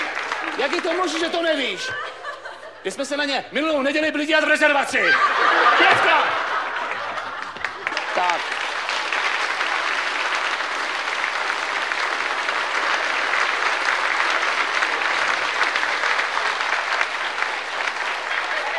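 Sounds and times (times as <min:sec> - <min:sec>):
audience clapping: 0:00.0 - 0:01.9, 0:05.6 - 0:18.7
laughter: 0:00.0 - 0:03.1, 0:04.8 - 0:08.8, 0:17.1 - 0:18.7
speech: 0:00.6 - 0:02.2, 0:02.8 - 0:06.4.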